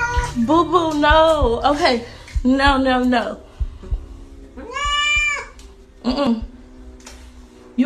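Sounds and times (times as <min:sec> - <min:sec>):
cat meowing: 0:00.0 - 0:00.7, 0:04.6 - 0:05.6
speech: 0:00.4 - 0:03.4, 0:06.0 - 0:06.5.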